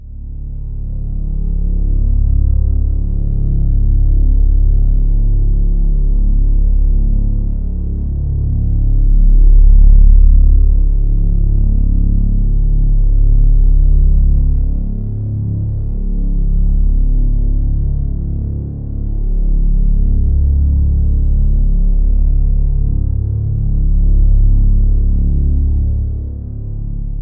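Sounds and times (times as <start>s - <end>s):
deep continuous low-frequency hum: 0.0s - 27.2s.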